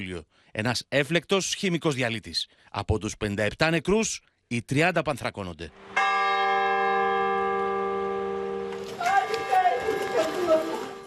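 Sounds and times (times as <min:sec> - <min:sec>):
speech: 0:00.0 - 0:06.0
church bell in Greece tolling mournfully: 0:05.8 - 0:11.0.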